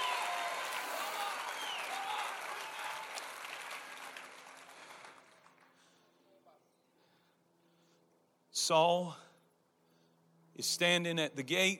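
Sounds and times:
audience shouting and cheering: 0.0 - 3.4
audience clapping: 0.0 - 5.8
speech: 8.7 - 9.2, 10.6 - 11.7.

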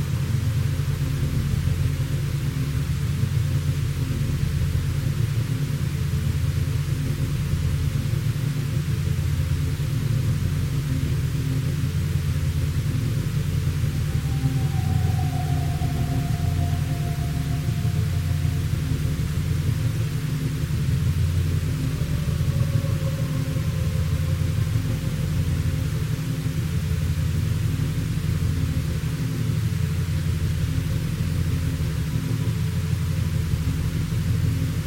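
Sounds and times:
binaural beats hum: 0.0 - 34.8
white noise: 0.0 - 34.8
faint gliding tone in the middle range: 13.0 - 32.8.

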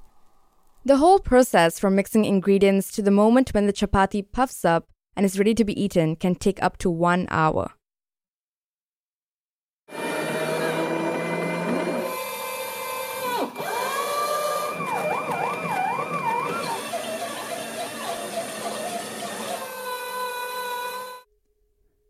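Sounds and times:
speech: 0.8 - 7.8
automatic chapati-making machine motor whirring: 9.9 - 21.3.

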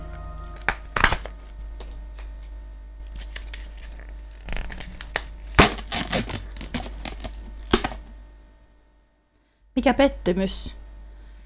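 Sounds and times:
foil lid of a Pringles can crinkling and scraping as peeled: 3.0 - 8.1
speech: 9.8 - 10.8.

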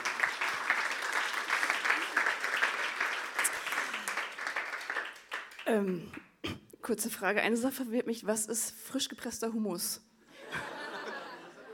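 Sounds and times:
audience applause: 0.0 - 5.7
speech: 5.7 - 6.3, 6.9 - 10.7
laughter: 10.3 - 11.7.

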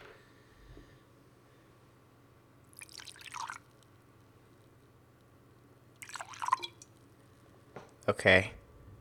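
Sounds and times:
liquor trickling into a small glass: 2.7 - 3.8, 6.0 - 6.9
speech: 8.1 - 8.6.

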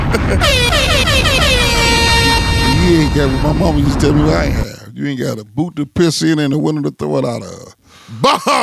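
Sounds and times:
air horn sound effect in stuttering blasts: 0.4 - 4.1
speech: 3.1 - 8.6.

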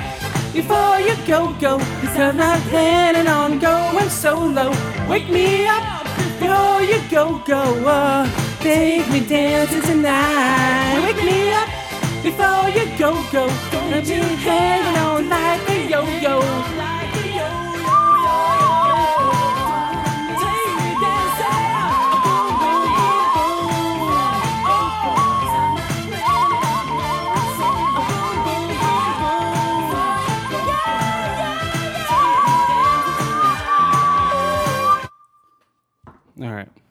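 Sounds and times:
speech: 0.5 - 17.0
death whistle blown in a harsh wailing scream: 17.1 - 35.6.

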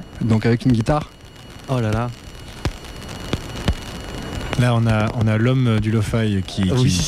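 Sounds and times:
sharp vinyl-style crackles: 0.0 - 7.0
steady broadband hiss: 0.0 - 7.0
speech: 0.2 - 2.2, 4.6 - 7.0.

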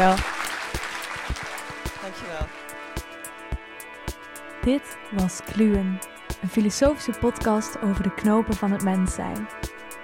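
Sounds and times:
speech: 0.0 - 0.3, 4.6 - 9.8
audience applauding: 0.0 - 2.8
steady rhythmic thumps: 0.0 - 10.0.

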